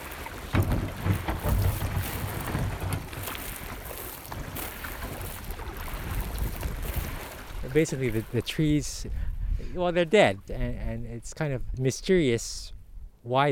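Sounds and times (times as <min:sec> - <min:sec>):
paddle strokes splashing while paddling a small boat up a river: 0:00.0 - 0:08.8
wind buffeting the microphone: 0:00.0 - 0:11.8
speech: 0:07.8 - 0:13.5.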